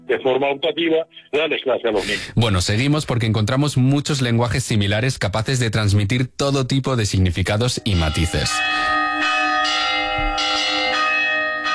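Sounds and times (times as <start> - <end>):
speech: 0.1 - 9.8
church bells ringing: 7.8 - 11.7.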